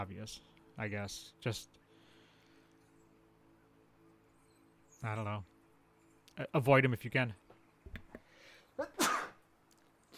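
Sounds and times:
speech: 0.0 - 1.8, 5.0 - 5.5, 6.4 - 7.4, 8.8 - 9.1
person sneezing: 8.8 - 9.4.

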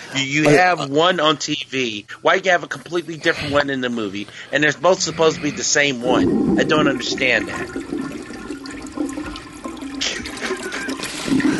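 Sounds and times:
speech: 0.1 - 7.9
toilet flushing with rushing swirl of water: 2.7 - 11.5.

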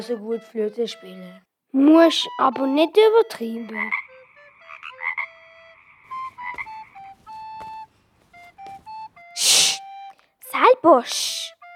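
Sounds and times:
speech: 0.0 - 4.0, 10.6 - 11.6
frog croaking: 3.7 - 7.1.

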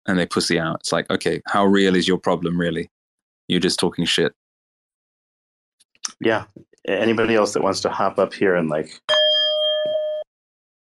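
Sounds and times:
speech: 0.1 - 4.4, 6.2 - 9.2
single clear bell ringing: 9.1 - 10.3.

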